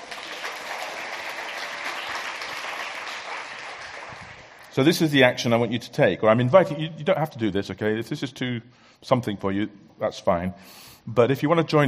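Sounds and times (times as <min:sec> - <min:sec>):
crowd clapping steadily: 0:00.0 - 0:04.7
speech: 0:04.8 - 0:11.8.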